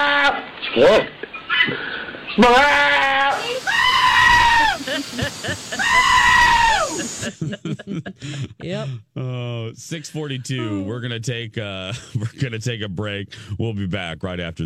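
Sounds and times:
speech: 0.8s - 3.0s, 5.2s - 14.6s
pygmy billy goats bleating: 2.4s - 4.9s, 5.8s - 7.2s
laughter: 4.4s - 11.0s, 11.7s - 12.9s.

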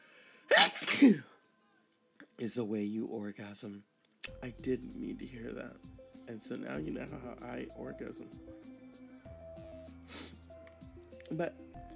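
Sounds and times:
sneeze: 0.5s - 1.3s
speech: 1.0s - 1.3s, 2.4s - 8.7s, 11.3s - 11.9s.

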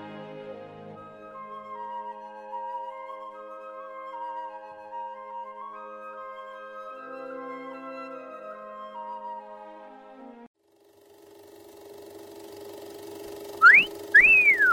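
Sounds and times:
steady mechanical hum: 10.8s - 14.7s
two-part wolf whistle: 13.6s - 14.7s.

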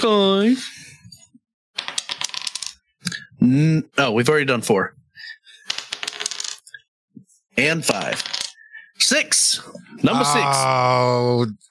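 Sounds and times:
speech: 0.0s - 0.7s, 3.4s - 5.4s, 7.6s - 8.4s, 9.0s - 11.7s
dice rolling on a table: 1.8s - 2.8s, 5.6s - 6.7s, 7.8s - 8.6s.

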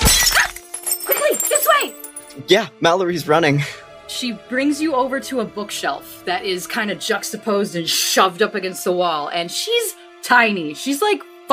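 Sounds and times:
glass fragments tinkling as they settle: 0.0s - 2.4s
glass lens shattering: 0.0s - 2.4s
speech: 1.4s - 11.5s.

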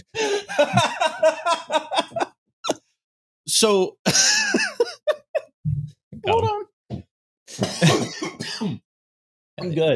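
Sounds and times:
speech: 0.0s - 0.9s, 3.6s - 4.2s, 9.6s - 9.9s
laughter: 0.2s - 2.4s, 4.1s - 5.5s
raspy coughs: 7.5s - 8.8s.

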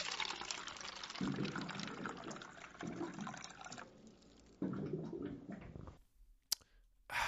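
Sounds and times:
water from a water cooler gurgling into a cup: 0.0s - 5.1s.

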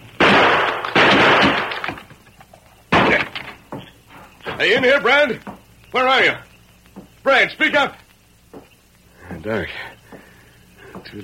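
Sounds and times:
gunshots in an outlaw-valley shootout: 0.2s - 2.1s, 2.9s - 3.6s
small gunshot cracks: 0.2s - 2.1s, 2.9s - 3.3s
speech: 4.6s - 6.4s, 7.2s - 8.0s, 9.4s - 10.0s, 11.0s - 11.2s.

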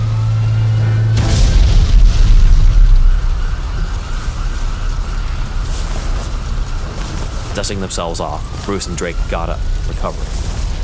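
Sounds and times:
heavy rumbling and crackling debris: 0.0s - 10.8s
low hum: 0.0s - 10.8s
garage explosion boom: 1.1s - 7.5s
speech: 7.6s - 10.4s.

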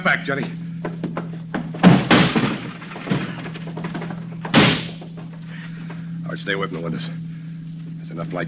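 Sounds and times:
speech: 0.0s - 0.6s, 6.4s - 7.2s, 8.1s - 8.4s
steady low hum: 0.0s - 8.4s
wooden door being kicked in: 1.1s - 5.4s.

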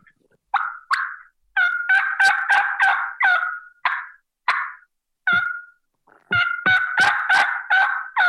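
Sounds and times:
turkey call producing light clucks and raspy yelps: 0.5s - 8.2s.

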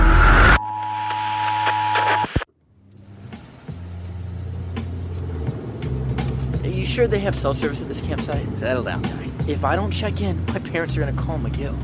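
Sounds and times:
burst of static: 0.0s - 2.5s
police car engine rumbling as it passes: 2.6s - 11.8s
speech: 7.0s - 11.8s.

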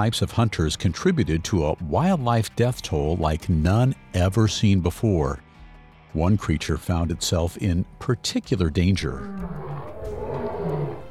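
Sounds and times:
speech: 0.0s - 5.4s, 6.1s - 9.7s
lion roaring: 9.1s - 11.0s.

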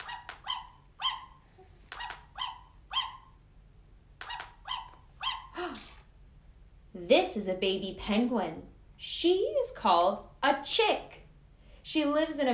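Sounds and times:
puppy barking in short sharp yips: 0.0s - 3.4s, 4.2s - 5.6s
speech: 7.1s - 11.2s, 11.9s - 12.5s.

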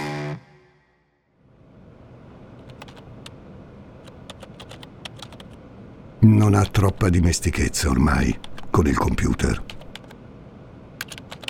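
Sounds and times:
low hum: 0.0s - 11.4s
fast typing on a computer keyboard: 2.6s - 3.1s, 4.0s - 5.6s, 8.4s - 10.1s, 11.0s - 11.4s
speech: 6.2s - 9.7s.

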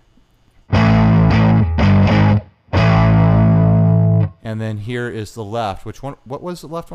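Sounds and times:
heavily distorted electric guitar chords through a distortion pedal on higher gain: 0.7s - 4.4s
speech: 4.5s - 6.9s.

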